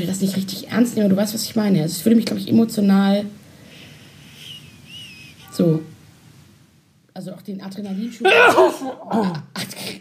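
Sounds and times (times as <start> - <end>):
speech: 0.0 - 3.4, 5.6 - 5.9, 7.2 - 9.9
sneeze: 8.2 - 9.0.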